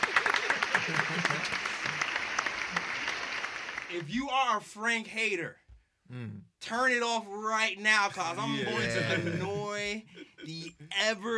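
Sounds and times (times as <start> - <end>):
laughter: 0.0 - 2.0, 8.1 - 11.0
group applauding: 0.0 - 4.1
speech: 4.0 - 11.3.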